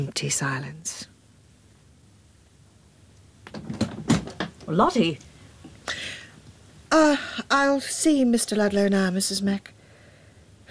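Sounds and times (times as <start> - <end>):
speech: 0.0 - 1.1, 4.7 - 5.3, 6.9 - 9.8
door knock: 3.5 - 4.6
door opening and shutting: 3.5 - 4.8.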